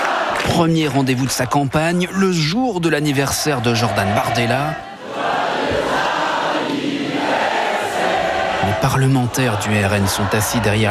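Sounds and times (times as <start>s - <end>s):
large crowd cheering and applauding at a political rally: 0.0s - 1.9s, 3.1s - 10.8s
speech: 0.5s - 4.9s, 8.8s - 10.8s.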